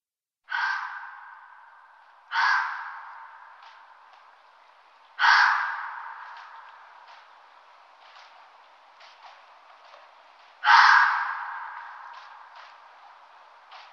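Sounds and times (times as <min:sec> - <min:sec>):
red fox giving harsh hoarse screams: 0:00.5 - 0:01.6, 0:02.3 - 0:03.5, 0:05.2 - 0:06.7, 0:10.6 - 0:12.2.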